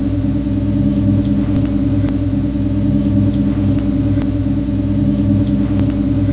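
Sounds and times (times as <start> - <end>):
electronic hum: 0.0 - 6.3.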